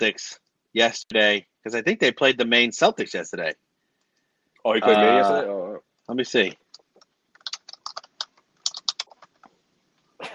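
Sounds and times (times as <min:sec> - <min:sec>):
speech: 0:00.0 - 0:03.6, 0:04.6 - 0:06.6
typing on a computer keyboard: 0:06.7 - 0:09.5.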